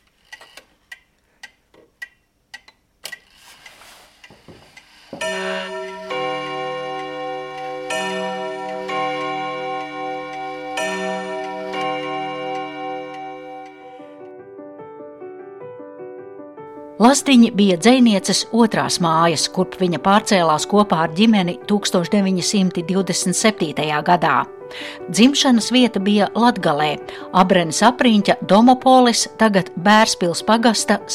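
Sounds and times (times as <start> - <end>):
clock ticking: 0.0 - 14.2
loud chiming melody of bell tones: 5.2 - 14.3
speech: 17.1 - 31.1.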